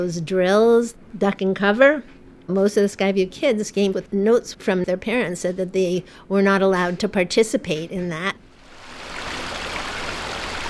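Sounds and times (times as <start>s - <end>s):
speech: 0.0s - 8.4s
stream flowing into a man-made pond: 8.6s - 10.6s.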